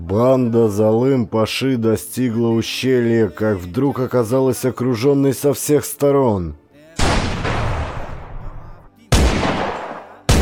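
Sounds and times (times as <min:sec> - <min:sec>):
speech: 0:00.1 - 0:06.6
gunshots in a mountain gorge: 0:07.0 - 0:10.4.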